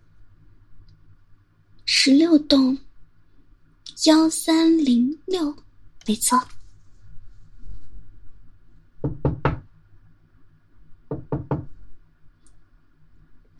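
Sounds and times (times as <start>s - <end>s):
faint low hum: 0.0s - 13.5s
speech: 2.0s - 2.9s, 4.0s - 6.6s
knocking on an apartment door: 9.0s - 9.7s, 11.1s - 11.8s.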